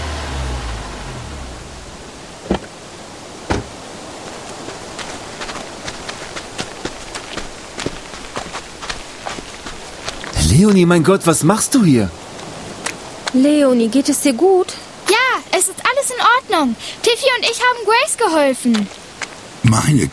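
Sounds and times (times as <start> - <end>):
car engine rumble as a car pulls up: 0.0 - 5.3
steady outdoor hiss: 0.0 - 20.1
car doors slamming: 2.4 - 2.8, 3.4 - 3.8
quick footsteps: 3.5 - 11.0
speech: 10.6 - 12.3, 13.3 - 14.6, 16.5 - 19.0, 19.7 - 20.1.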